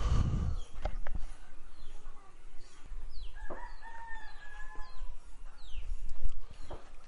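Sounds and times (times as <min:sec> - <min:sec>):
steady noisy background: 0:00.0 - 0:07.0
rooster crowing at dawn in a small village in early March: 0:03.4 - 0:05.2.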